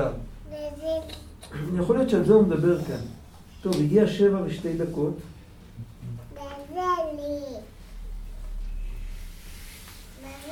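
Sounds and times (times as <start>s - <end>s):
speech: 0.0s - 5.3s
young child babbling in a high sing-song voice: 6.3s - 7.7s.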